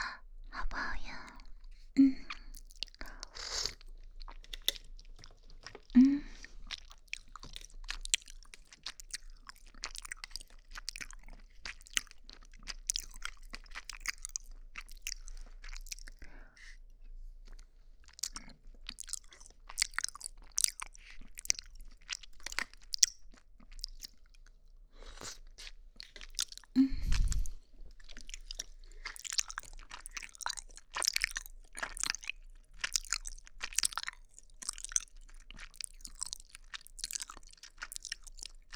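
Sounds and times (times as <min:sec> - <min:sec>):
chewing and crunching sweet soft taro balls: 0:01.3 - 0:38.7.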